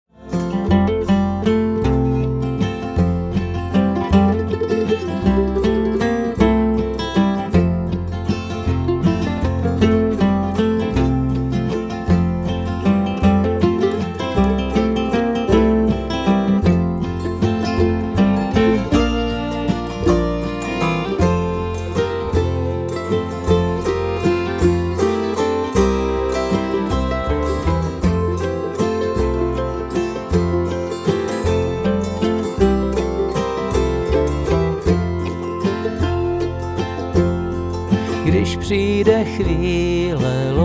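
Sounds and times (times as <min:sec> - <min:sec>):
guitar playing: 0:00.0 - 0:40.6.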